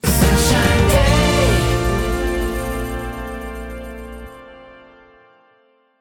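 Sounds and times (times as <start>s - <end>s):
achievement jingle: 0.0s - 4.4s.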